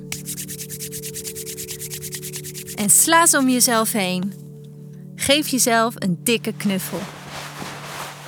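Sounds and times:
hands rubbing together to warm up: 0.0 - 3.7, 6.8 - 8.2
speech: 2.8 - 4.4, 5.3 - 7.2.

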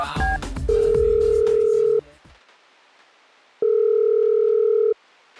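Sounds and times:
telephone ringback tone of an unanswered outgoing call: 0.2 - 2.0, 3.6 - 5.0
faint noise: 0.2 - 5.3.

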